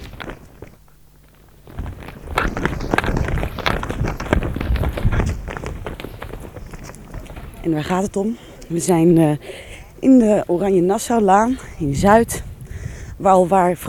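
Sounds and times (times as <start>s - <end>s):
several people running footsteps on a hard surface: 0.0s - 13.2s
speech: 7.7s - 12.4s, 13.2s - 13.8s.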